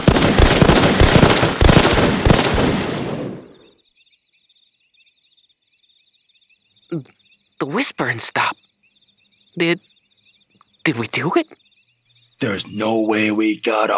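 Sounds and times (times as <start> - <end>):
group gunfire burst of rapid shots on command: 0.0 - 3.6
quiet insect chirping: 0.0 - 13.9
speech: 6.9 - 8.7, 9.6 - 9.9, 10.8 - 11.6, 12.4 - 13.9.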